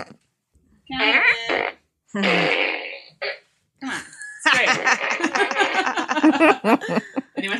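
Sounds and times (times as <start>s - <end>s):
toy fart gun fart noises: 0.9s - 3.4s
speech: 2.1s - 2.5s
laughter: 4.5s - 7.5s.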